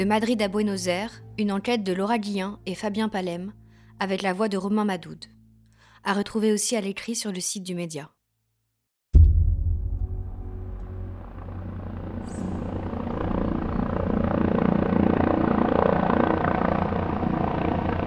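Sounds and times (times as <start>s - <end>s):
speech: 0.0s - 5.4s, 6.0s - 8.2s
helicopter carrying a coffin, deep rotor thump in Spain: 9.2s - 14.6s
helicopter engine roar in Spain: 10.8s - 18.0s.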